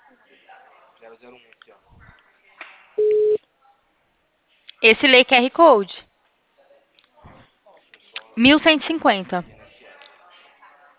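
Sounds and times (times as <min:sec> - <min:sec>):
speech: 0:01.0 - 0:02.3, 0:04.8 - 0:06.0, 0:08.4 - 0:09.6
telephone call signal electronic beep: 0:03.0 - 0:03.4.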